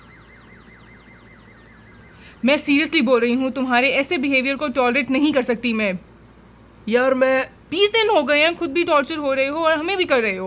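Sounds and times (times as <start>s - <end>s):
ambulance siren wailing in a fast up-and-down yelp: 0.0s - 5.0s
speech: 2.4s - 6.1s, 6.9s - 10.4s.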